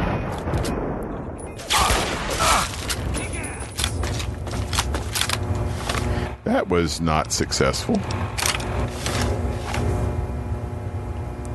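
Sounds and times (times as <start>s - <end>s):
rifle gunfire in a video game firefight: 0.0s - 6.2s
loud blasts: 0.0s - 6.5s, 7.9s - 11.0s
speech: 6.6s - 8.5s.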